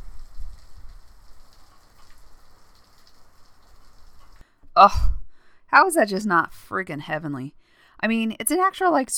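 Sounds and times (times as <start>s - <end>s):
heavy rain pouring outdoors: 0.0s - 4.4s
speech: 4.8s - 9.1s.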